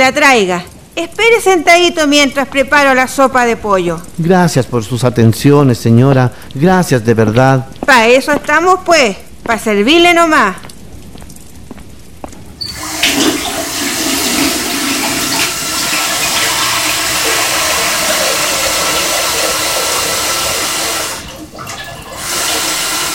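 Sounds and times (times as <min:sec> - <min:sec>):
speech: 0:00.0 - 0:10.7
hot water pouring into a basin: 0:12.6 - 0:23.1.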